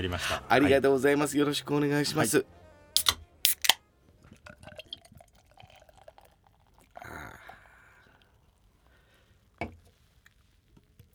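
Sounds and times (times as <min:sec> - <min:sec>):
speech: 0:00.0 - 0:02.6
beer pouring into a glass: 0:03.0 - 0:03.8, 0:04.5 - 0:07.4
can of Yebisu beer being opened: 0:03.0 - 0:03.8.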